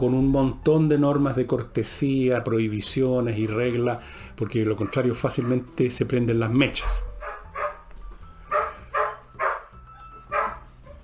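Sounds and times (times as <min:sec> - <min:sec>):
speech: 0:00.0 - 0:07.1
dog barking: 0:04.8 - 0:05.6, 0:06.8 - 0:07.8, 0:08.5 - 0:09.7, 0:10.3 - 0:11.0.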